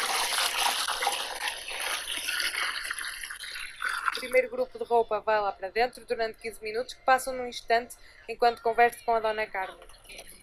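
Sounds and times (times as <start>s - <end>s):
water pouring into a washing machine drum: 0.0s - 4.4s
speech: 4.2s - 10.2s.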